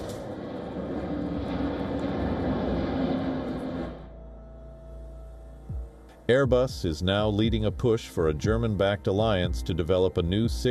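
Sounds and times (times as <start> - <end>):
fighter jet roaring: 0.0 - 4.8
speech: 6.3 - 10.6.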